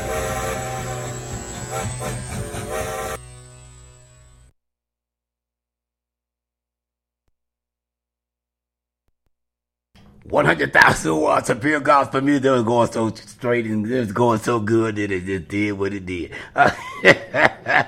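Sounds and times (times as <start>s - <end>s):
train sound effect rumbling with buzzing horn-like tones: 0.0s - 3.2s
speech: 1.8s - 2.4s, 10.3s - 17.8s
laughter: 16.3s - 17.8s.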